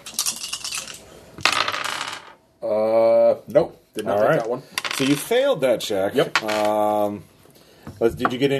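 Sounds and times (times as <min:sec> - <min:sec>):
dice rolled for a game rattling across a hard surface: 0:00.0 - 0:02.4, 0:06.3 - 0:06.8
speech: 0:02.6 - 0:07.3, 0:08.0 - 0:08.5.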